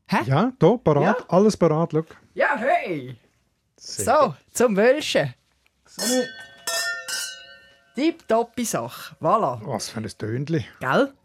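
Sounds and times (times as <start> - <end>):
speech: 0.2 - 3.2, 3.8 - 6.5, 8.0 - 11.2
wine glasses clinking in a toast: 5.9 - 9.2.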